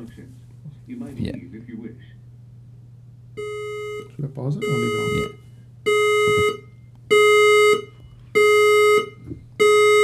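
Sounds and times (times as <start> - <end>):
speech: 0.0 - 2.2, 4.2 - 6.0
low hum: 0.0 - 10.0
building fire alarm sounding in electronic tones: 3.4 - 10.0.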